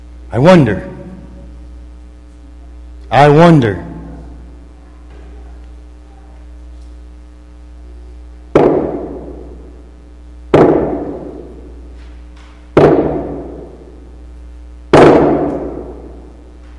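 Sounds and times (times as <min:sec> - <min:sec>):
speech: 0:00.3 - 0:00.9, 0:03.1 - 0:03.9
heavy hammer blows nailing paper to a wooden door: 0:08.6 - 0:09.5, 0:10.5 - 0:11.6, 0:12.8 - 0:13.8, 0:14.9 - 0:16.1.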